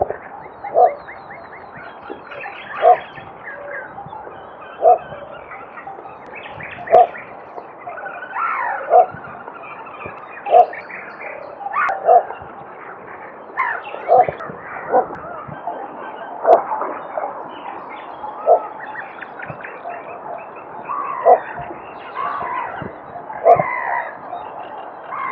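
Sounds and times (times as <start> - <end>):
little bittern calling: 0.0 - 12.5, 13.6 - 25.3.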